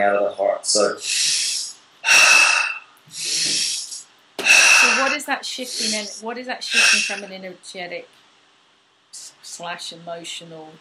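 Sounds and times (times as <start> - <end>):
speech: 0.0 - 1.4, 5.0 - 8.2, 9.6 - 10.8
forceful inhales and exhales in a guided breathing exercise: 1.0 - 7.3.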